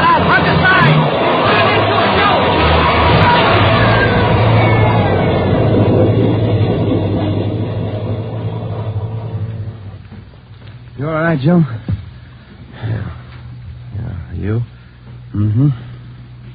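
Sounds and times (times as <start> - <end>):
subway train roaring through a tunnel: 0.0 - 12.8
speech: 11.4 - 11.8, 15.6 - 15.8.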